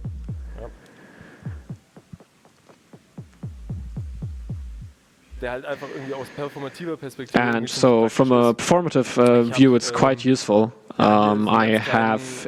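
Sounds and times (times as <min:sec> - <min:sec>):
electronic beat with deep punchy kick thumps through a DJ filter effect: 0:00.0 - 0:05.6
speech: 0:05.4 - 0:12.4.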